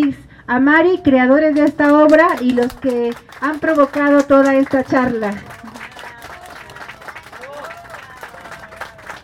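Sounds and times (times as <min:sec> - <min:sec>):
speech: 0:00.5 - 0:05.6
audience applause: 0:02.6 - 0:09.2.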